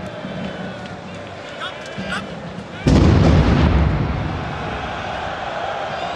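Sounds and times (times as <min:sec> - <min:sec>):
steady roar of a large stadium crowd: 0:00.0 - 0:06.1
single heavy explosion in a stadium: 0:02.9 - 0:05.4.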